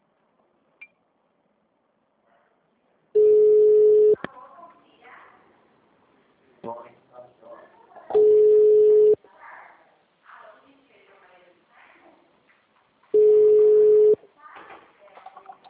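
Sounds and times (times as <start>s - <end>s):
outgoing phone call ringback tone: 3.2s - 4.2s, 8.2s - 9.2s, 13.2s - 14.2s
people talking: 4.2s - 5.5s, 6.6s - 12.3s, 14.4s - 15.6s.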